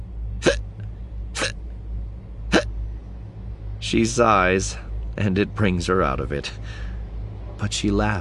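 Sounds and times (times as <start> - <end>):
low rumbling background: 0.0 - 8.2
hiccups: 0.4 - 0.6, 1.4 - 1.6, 2.5 - 2.7
speech: 3.8 - 6.9, 7.6 - 8.2.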